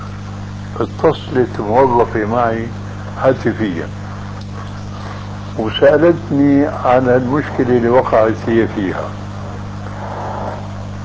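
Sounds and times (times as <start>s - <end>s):
speech: 0.7s - 4.0s, 5.6s - 9.2s
constant rumbling windy background: 6.7s - 11.0s
car passing with low engine drone: 7.0s - 11.0s.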